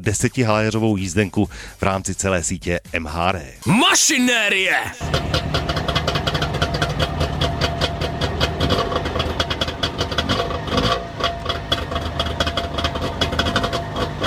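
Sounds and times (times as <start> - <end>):
speech: 0.0 - 5.8
Trabant 601 two-stroke car engine idling and revving: 5.0 - 14.2.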